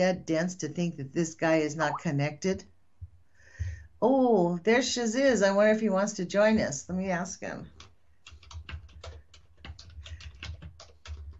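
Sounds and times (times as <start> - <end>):
speech: 0.0 - 2.7, 4.0 - 7.8
typing on a computer keyboard: 7.7 - 11.3.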